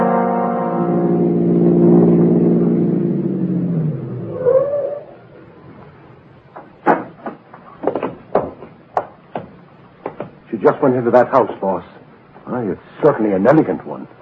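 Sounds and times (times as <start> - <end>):
car engine rumbling and idling down: 0.2 - 7.2
sharp knocks and clatters: 6.5 - 10.4
speech: 10.9 - 14.2.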